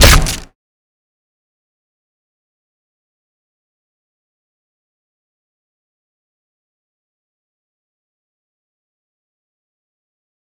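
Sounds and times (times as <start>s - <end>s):
grapple killmove: 0.0s - 0.5s.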